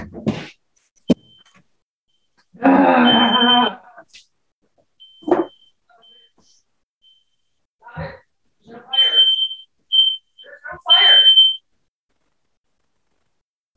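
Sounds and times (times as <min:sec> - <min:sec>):
home smoke alarm beeping with no fire: 0:03.0 - 0:03.7, 0:05.0 - 0:06.4, 0:07.0 - 0:07.3, 0:08.9 - 0:11.6.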